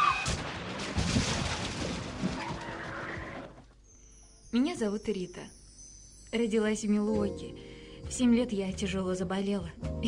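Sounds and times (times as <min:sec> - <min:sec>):
car crash: 0:00.1 - 0:03.5
rumbling clattering aftermath of a crash: 0:00.2 - 0:03.5
speech: 0:04.6 - 0:05.6, 0:06.3 - 0:10.0.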